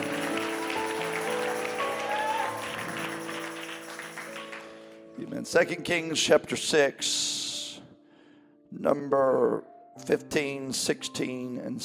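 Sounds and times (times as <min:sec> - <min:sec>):
large church audience clapping during a sermon: 0:00.0 - 0:05.1
speech: 0:05.3 - 0:07.4, 0:08.7 - 0:11.8.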